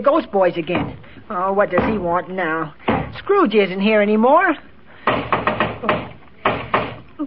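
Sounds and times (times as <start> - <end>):
speech: 0.0 - 4.7
knocking on a door: 5.1 - 7.0.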